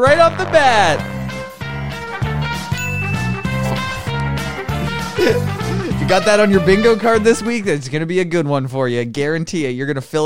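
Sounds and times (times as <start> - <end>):
speech: 0.0 - 1.2, 5.2 - 10.2
mobile phone ringtone playing a bright electronic melody: 2.7 - 4.1
laughter: 4.4 - 7.6.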